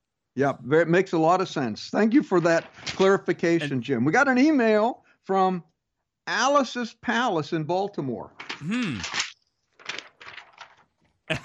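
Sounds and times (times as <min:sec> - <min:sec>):
speech: 0:00.4 - 0:05.7, 0:06.3 - 0:09.2, 0:11.3 - 0:11.4
paper rustling: 0:02.1 - 0:03.6, 0:08.4 - 0:11.4.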